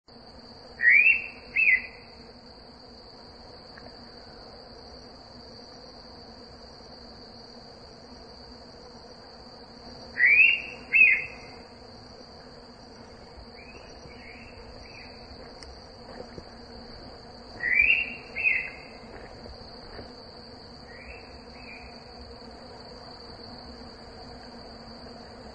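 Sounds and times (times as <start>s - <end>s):
Indian pitta calling: 0.7s - 2.2s, 10.1s - 11.8s, 13.4s - 15.3s, 17.6s - 19.3s, 20.8s - 22.1s.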